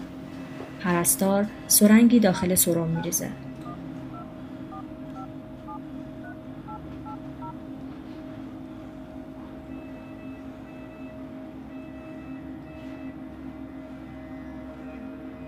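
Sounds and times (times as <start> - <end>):
speech: 1.0 - 3.4
mobile phone keypad beeps at varying pitches: 2.4 - 7.6.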